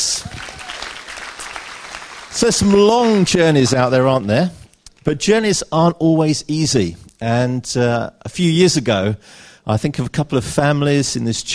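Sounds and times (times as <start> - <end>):
room full of people applauding: 0.0 - 4.5
speech: 2.4 - 11.5.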